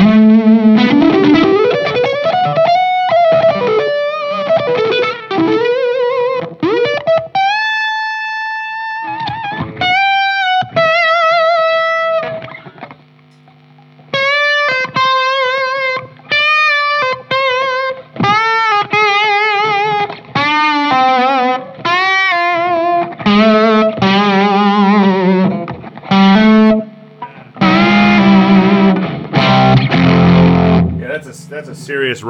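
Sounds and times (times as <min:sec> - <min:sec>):
heavily distorted electric guitar with gritty rock tone: 0:00.0 - 0:32.2
faint hum: 0:31.0 - 0:32.2
laughter: 0:31.0 - 0:32.2
speech: 0:32.0 - 0:32.2.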